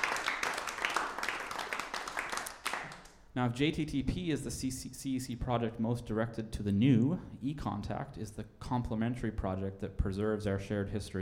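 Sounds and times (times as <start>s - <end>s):
audience applause for competition winners: 0.0s - 3.1s
speech: 3.4s - 11.1s.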